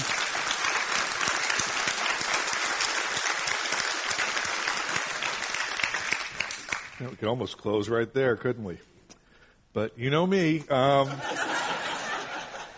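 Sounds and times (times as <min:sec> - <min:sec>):
large audience applauding: 0:00.0 - 0:07.0
speech: 0:07.0 - 0:08.9, 0:09.8 - 0:11.4
laughter: 0:10.9 - 0:12.7.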